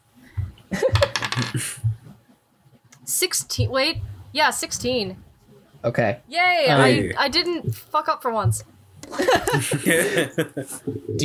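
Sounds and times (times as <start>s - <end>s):
dice rolled and clattering across a surface: 1.0s - 1.8s
speech: 3.2s - 5.2s, 5.8s - 11.2s
faint laughter-like voices: 9.0s - 11.1s.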